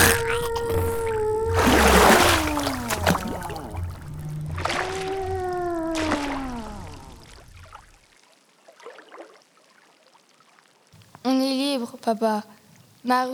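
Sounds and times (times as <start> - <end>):
whale groaning: 0.0 - 7.8
rushing, splashing water as the whale expels its contents: 0.0 - 11.1
dripping splashes: 1.5 - 11.2
speech: 12.1 - 13.3.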